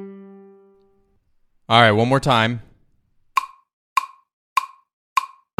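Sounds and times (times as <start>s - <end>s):
speech: 1.8s - 2.7s
count-in clicks: 3.4s - 5.5s.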